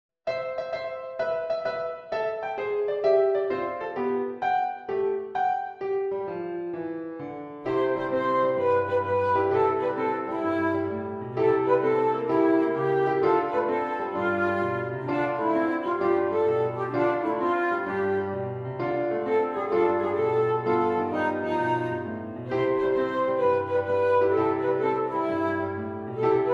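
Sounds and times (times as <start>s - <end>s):
piano: 0.2s - 26.5s
flute: 7.6s - 26.5s.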